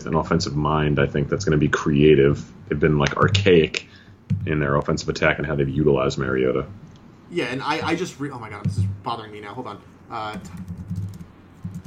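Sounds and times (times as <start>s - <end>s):
speech: 0.0s - 11.0s
low hum: 0.0s - 11.8s
person typing on a computer keyboard: 10.4s - 11.8s.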